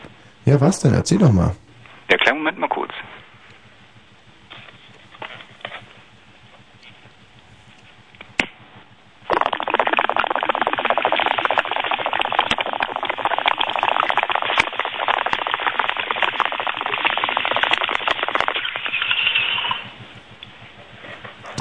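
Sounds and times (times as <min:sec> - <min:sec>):
speech: 0:00.5 - 0:03.3
water pipe bubbling while being smoked: 0:08.9 - 0:21.5.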